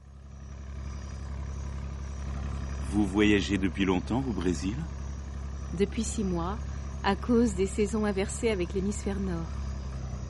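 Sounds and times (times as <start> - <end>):
small steamboat engine running on deck on the Amazon near Manaus: 0.0 - 10.2
speech: 2.9 - 5.0, 5.7 - 9.6.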